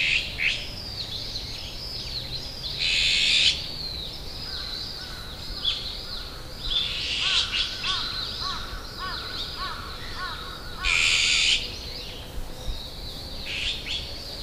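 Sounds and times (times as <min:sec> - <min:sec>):
azure-winged magpie calling: 0:00.0 - 0:14.4
azure-winged magpie rasping screech: 0:06.2 - 0:11.7.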